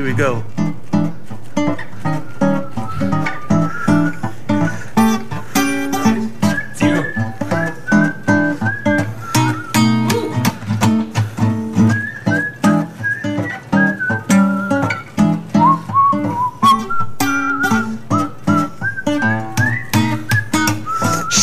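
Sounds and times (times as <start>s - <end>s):
speech: 0.0s - 0.6s
instrumental backing track with bass and rhythmic chords: 0.0s - 21.4s
bright whistled melody: 2.0s - 21.4s.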